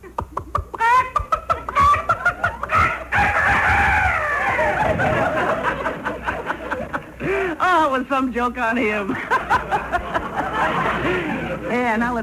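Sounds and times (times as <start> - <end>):
laughter: 0.8 - 7.6, 9.1 - 12.0
rooster clucking and crowing: 2.7 - 5.4
speech: 8.0 - 9.8, 10.6 - 12.2.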